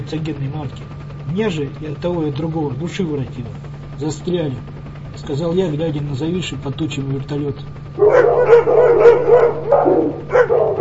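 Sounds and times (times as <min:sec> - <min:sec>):
low steady hum: 0:00.0 - 0:10.7
speech: 0:00.0 - 0:10.7
pack of blind dogs barking: 0:07.9 - 0:10.7.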